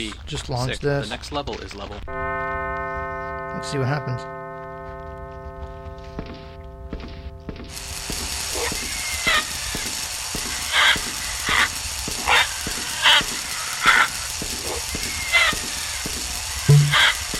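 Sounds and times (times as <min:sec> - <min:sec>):
speech: 0:00.0 - 0:02.5, 0:03.6 - 0:04.4
steady hum: 0:01.1 - 0:17.3
video game ding for losing lives: 0:02.1 - 0:07.8, 0:16.7 - 0:17.1.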